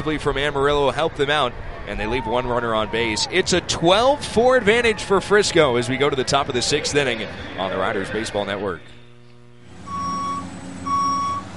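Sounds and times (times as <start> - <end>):
speech: 0.0 - 9.0
low engine rumble: 0.0 - 11.5
reversing beeps of construction equipment: 9.8 - 11.5.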